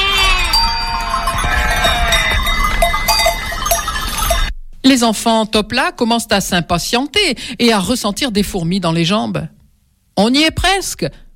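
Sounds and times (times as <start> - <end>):
lamb bleating at night: 0.0 - 2.4
sheep bell tinkling: 0.0 - 4.6
speech: 4.9 - 9.6, 10.2 - 11.2.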